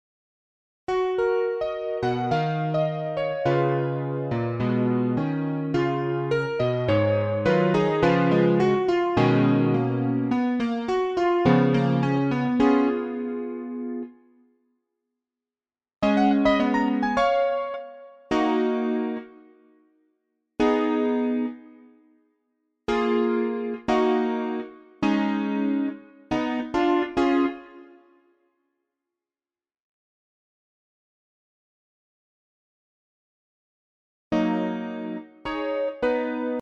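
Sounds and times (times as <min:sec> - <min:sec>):
electric piano: 0:00.9 - 0:14.2, 0:16.0 - 0:19.5, 0:20.6 - 0:21.8, 0:22.9 - 0:27.9, 0:34.3 - 0:36.6.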